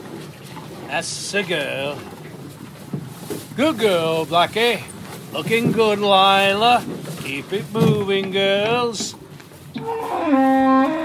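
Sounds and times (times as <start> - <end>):
speech: 0.9 - 2.2, 3.6 - 9.2, 9.8 - 11.0
cow mooing: 9.8 - 11.0.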